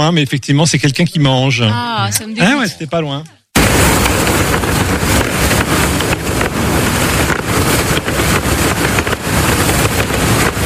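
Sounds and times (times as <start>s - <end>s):
speech: 0.0s - 3.8s
wind blowing through sailboat sails: 3.6s - 10.6s.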